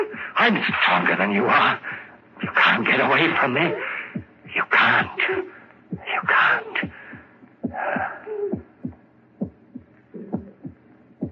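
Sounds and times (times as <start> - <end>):
speech: 0.0 - 7.0
breathy rush: 0.0 - 9.0
heavy heartbeat thudding: 2.4 - 11.2.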